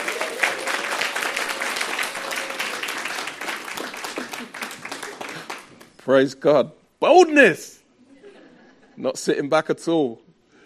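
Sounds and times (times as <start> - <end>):
audience applauding: 0.0 - 6.0
speech: 6.1 - 7.8, 9.0 - 10.2.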